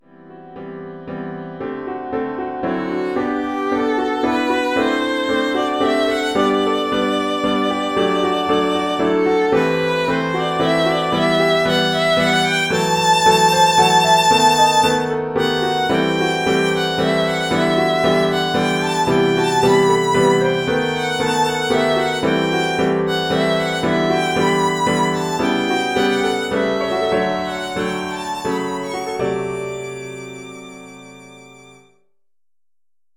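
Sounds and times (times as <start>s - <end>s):
solo violin playing a waltz: 2.4s - 31.9s.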